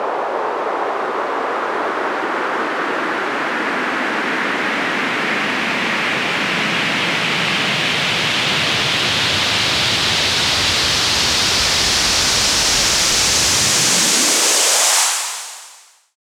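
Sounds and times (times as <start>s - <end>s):
medium white noise sweep: 0.0s - 16.1s.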